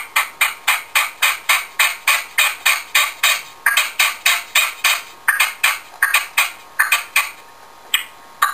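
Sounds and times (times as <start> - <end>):
partridge song: 0.0 - 8.5.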